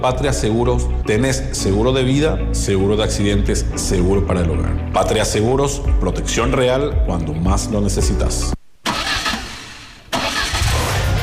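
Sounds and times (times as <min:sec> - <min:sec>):
speech: 0:00.0 - 0:08.6
pickup truck engine starting: 0:08.9 - 0:11.2.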